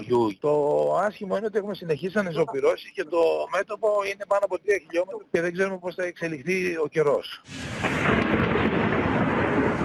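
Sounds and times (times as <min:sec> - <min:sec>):
speech: 0:00.0 - 0:08.4
thunder rumbling during a dry lightning storm: 0:07.5 - 0:09.8.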